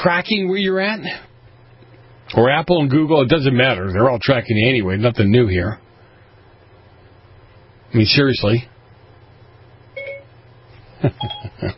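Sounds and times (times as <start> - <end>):
speech: 0.0 - 1.3, 2.3 - 5.8, 7.9 - 8.7, 11.0 - 11.7
faint low hum: 0.0 - 11.7
Siri voice assistant activation chime from a phone: 10.0 - 10.3.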